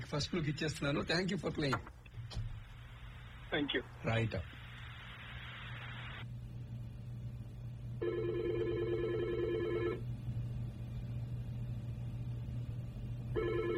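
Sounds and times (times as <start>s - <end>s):
steady low hum: 0.0s - 13.7s
speech: 0.1s - 2.4s, 3.5s - 4.6s
telephone ringing as a listener calls in to a radio programme: 8.0s - 10.0s, 13.3s - 13.7s.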